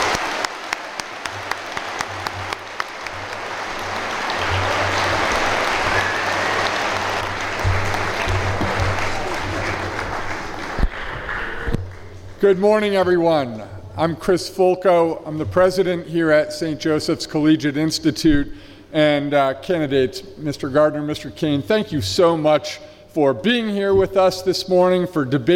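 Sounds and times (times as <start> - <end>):
audience applause from a large crowd: 0.0 - 12.4
speech: 12.4 - 25.5.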